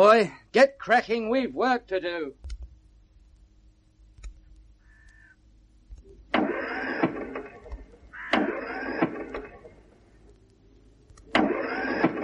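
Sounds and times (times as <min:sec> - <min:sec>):
speech: 0:00.0 - 0:02.4
overheated truck engine with boiling radiator cranking without starting: 0:06.4 - 0:09.8, 0:11.3 - 0:12.2.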